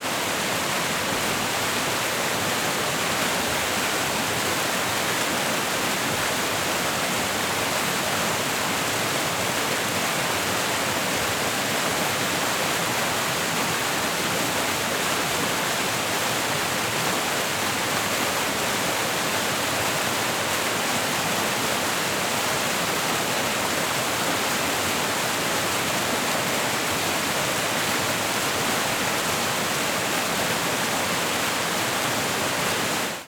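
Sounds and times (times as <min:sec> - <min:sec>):
water of a waterfall fountain: 0:00.0 - 0:33.2.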